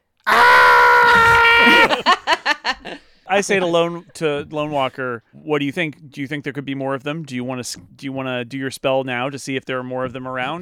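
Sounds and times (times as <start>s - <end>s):
person imitating a character's scream: 0.2s - 2.0s
person laughing: 1.2s - 3.0s
speech: 2.7s - 10.6s.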